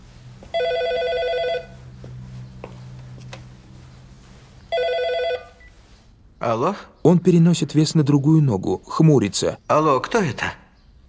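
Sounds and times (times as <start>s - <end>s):
low steady hum: 0.0s - 7.4s
cordless phone ringing indoors: 0.5s - 1.8s, 4.7s - 5.7s
speech: 6.4s - 10.6s.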